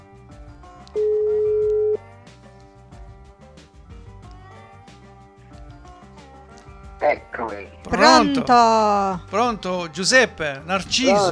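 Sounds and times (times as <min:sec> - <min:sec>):
quiet music: 0:00.0 - 0:11.3
ringback tone of an outgoing telephone call: 0:01.0 - 0:02.0
speech: 0:07.1 - 0:11.3.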